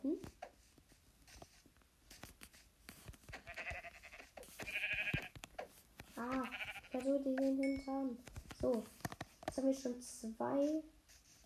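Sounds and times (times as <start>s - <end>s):
light tapping footsteps: 0.0s - 11.4s
sheep bleating: 3.4s - 5.3s, 6.3s - 7.0s
speech: 7.0s - 9.0s, 9.6s - 11.0s.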